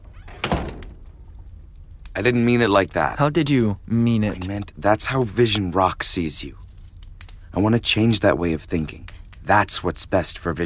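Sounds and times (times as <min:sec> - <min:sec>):
door shutting with a muffled thunk: 0:00.0 - 0:01.3
speech: 0:02.2 - 0:06.6, 0:07.6 - 0:10.6.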